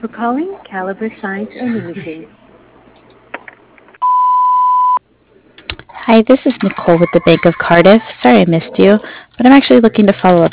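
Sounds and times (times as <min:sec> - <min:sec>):
speech: 0:00.0 - 0:02.4, 0:06.1 - 0:10.5
answering machine electronic beep: 0:04.0 - 0:05.0
laughter: 0:06.5 - 0:09.0.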